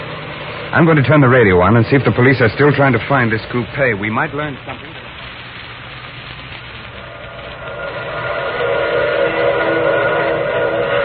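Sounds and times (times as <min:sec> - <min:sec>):
low rumble of an approaching train: 0:00.0 - 0:11.0
speech: 0:00.7 - 0:05.0
steam train whistle: 0:07.1 - 0:11.0.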